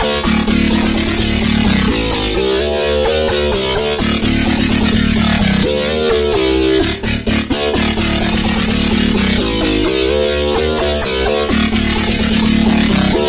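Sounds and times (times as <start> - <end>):
growling synth bass: 0.0 - 13.2.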